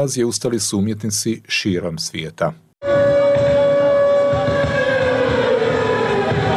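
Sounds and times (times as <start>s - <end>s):
speech: 0.0s - 3.0s
air raid siren wailing: 2.8s - 6.5s.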